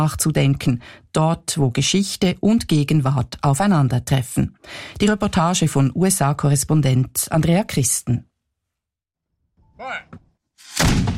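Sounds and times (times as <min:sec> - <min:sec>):
speech: 0:00.0 - 0:08.3, 0:09.8 - 0:10.2, 0:10.8 - 0:11.1
cannon blast echoing over a lake: 0:10.7 - 0:11.1.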